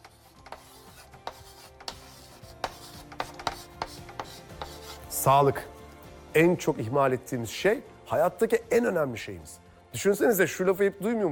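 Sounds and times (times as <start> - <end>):
pen writing on paper: 0.0 - 5.1
speech: 5.2 - 11.3.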